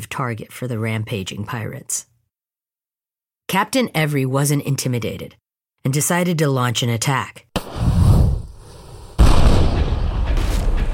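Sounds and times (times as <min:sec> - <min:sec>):
speech: 0:00.2 - 0:02.1, 0:03.5 - 0:08.0
cannon fire boom: 0:09.2 - 0:10.9.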